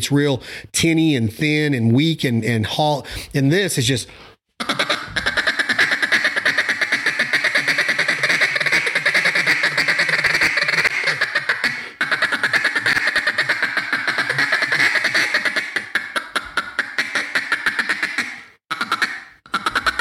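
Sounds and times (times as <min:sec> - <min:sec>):
speech: 0:00.0 - 0:04.8
duck call blown as a feed call imitating ducks: 0:04.6 - 0:19.9.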